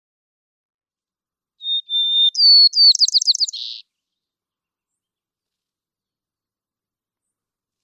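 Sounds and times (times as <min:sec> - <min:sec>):
white-crowned sparrow song: 0:01.6 - 0:03.8
speech: 0:03.5 - 0:03.9.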